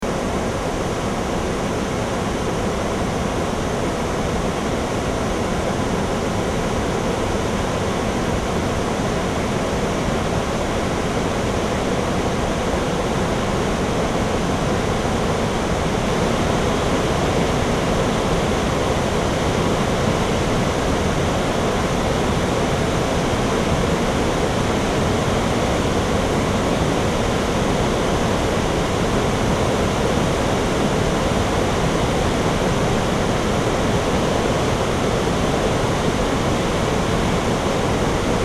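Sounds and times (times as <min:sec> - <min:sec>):
river flowing: 0:00.1 - 0:38.4.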